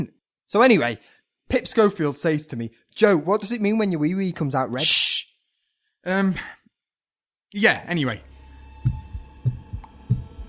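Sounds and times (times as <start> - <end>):
speech: 0.5 - 5.1, 6.0 - 6.6, 7.5 - 9.0
heartbeat thumping in deep lub-dub pairs: 8.8 - 10.4.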